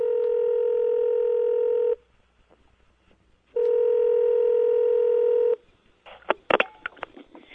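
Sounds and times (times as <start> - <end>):
steady electronic telephone tone: 0.0 - 2.0, 3.6 - 5.6.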